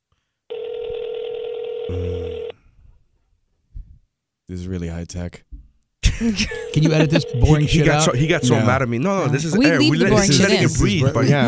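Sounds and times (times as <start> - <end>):
speech: 1.9 - 2.4, 4.5 - 5.5, 6.2 - 11.4
laughter: 6.0 - 8.8, 9.4 - 11.4
telephone tone of an outgoing call: 6.5 - 8.6.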